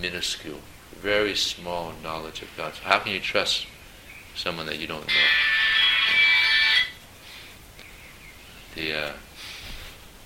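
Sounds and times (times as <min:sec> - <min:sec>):
speech: 0:00.0 - 0:03.8, 0:04.4 - 0:05.6, 0:08.8 - 0:09.3
cell phone ringing during a class: 0:05.1 - 0:07.0.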